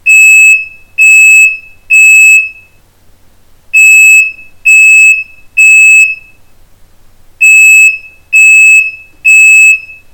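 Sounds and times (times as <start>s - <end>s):
Bosch Ferion 1000 O smoke alarm: 0.1s - 2.8s, 3.8s - 6.4s, 7.4s - 10.1s.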